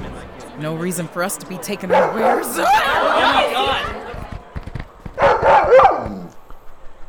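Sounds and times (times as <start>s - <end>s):
speech: 0.6s - 4.0s
laughter: 1.5s - 4.6s
wolves barking with rough yelps: 1.8s - 3.6s, 5.2s - 6.4s.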